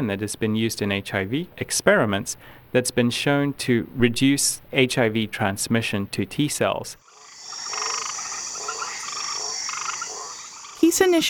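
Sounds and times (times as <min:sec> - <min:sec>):
speech: 0:00.0 - 0:07.7, 0:10.9 - 0:11.2
Australian white tree frog croaking: 0:07.0 - 0:11.2
high-pitched night chorus: 0:07.0 - 0:11.2.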